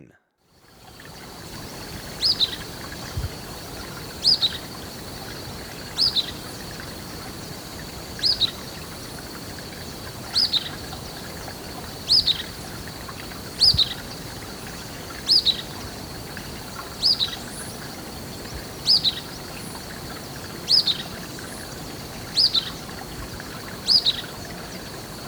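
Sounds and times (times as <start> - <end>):
Golden-crowned Flycatcher calling in Ecuador: 0.6 - 25.2.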